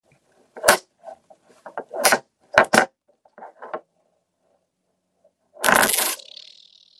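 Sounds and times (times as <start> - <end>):
magnets buzzing: 5.6 - 6.9.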